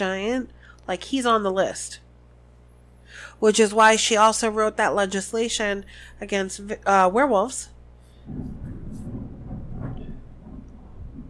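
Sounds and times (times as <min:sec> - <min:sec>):
speech: 0:00.0 - 0:02.0, 0:03.1 - 0:07.7, 0:08.3 - 0:08.7
thunder rumbling during storm: 0:08.2 - 0:11.2.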